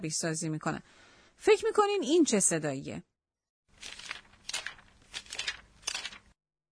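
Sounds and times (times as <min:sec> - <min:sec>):
speech: 0:00.0 - 0:03.1
pages of a book being flipped: 0:03.7 - 0:06.4.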